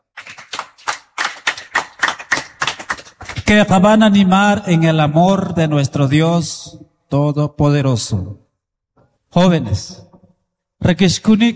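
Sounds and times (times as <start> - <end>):
audience applause: 0.0 - 3.5
speech: 3.5 - 8.4, 9.3 - 10.1, 10.8 - 11.5.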